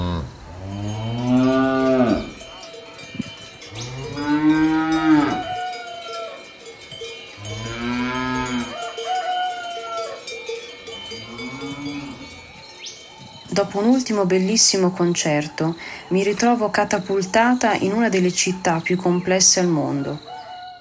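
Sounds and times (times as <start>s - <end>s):
cattle mooing: 0.0s - 2.5s, 3.7s - 6.2s, 7.4s - 8.8s, 11.1s - 12.5s
cowbells clanking: 0.1s - 20.4s
speech: 13.6s - 20.3s.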